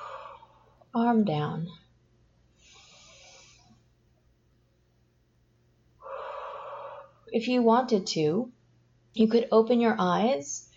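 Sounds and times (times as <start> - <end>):
slow deliberate breathing by a hypnotist: 0.0 - 0.9, 2.5 - 3.9, 6.0 - 7.3
speech: 0.9 - 1.8, 7.4 - 8.6, 9.2 - 10.7.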